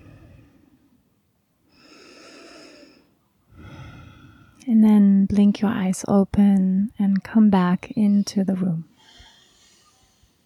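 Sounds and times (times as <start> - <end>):
person taking a slow deep breath: 0.0 - 0.9, 1.7 - 4.6, 9.0 - 10.4
speech: 5.5 - 8.9.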